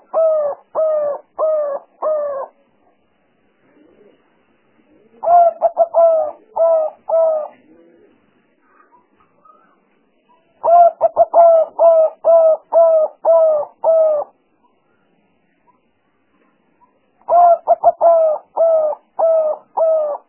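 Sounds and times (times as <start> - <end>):
spotted dove cooing as a lure sound: 0.0 - 2.6, 3.6 - 9.8, 10.6 - 14.4, 17.2 - 20.2.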